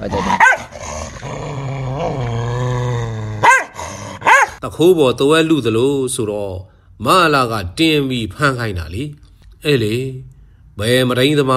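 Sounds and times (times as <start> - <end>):
speech: 0.0 - 0.5, 4.7 - 11.5
dogs growling and fighting: 0.0 - 4.6
dogs yelping barks: 0.3 - 0.8, 3.4 - 4.6.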